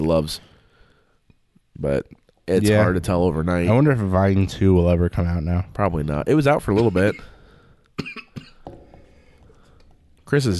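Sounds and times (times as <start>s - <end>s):
speech: 0.0s - 0.5s, 1.8s - 7.3s, 8.0s - 8.3s, 10.3s - 10.5s
person getting over a cold coughing harshly: 6.7s - 7.4s, 8.0s - 8.6s.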